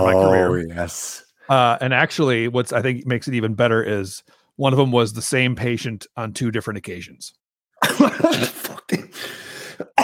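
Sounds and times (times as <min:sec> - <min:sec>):
speech: 0:00.0 - 0:10.0
person coughing: 0:07.8 - 0:10.0.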